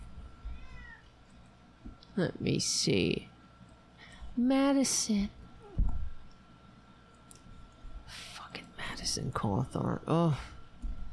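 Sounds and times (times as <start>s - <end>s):
cat meowing: 0.4s - 1.1s
speech: 2.2s - 3.4s, 4.4s - 5.4s, 9.2s - 10.6s.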